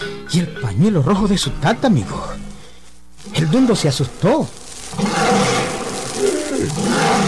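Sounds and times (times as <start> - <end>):
speech: 0.3 - 2.5, 3.3 - 5.1
tiger roaring: 4.9 - 7.2.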